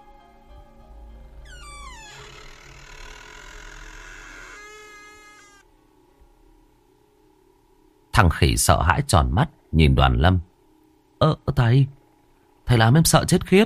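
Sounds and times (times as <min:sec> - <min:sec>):
door creaking open by itself: 0:01.3 - 0:05.6
speech: 0:08.2 - 0:10.5, 0:11.2 - 0:12.0, 0:12.7 - 0:13.6.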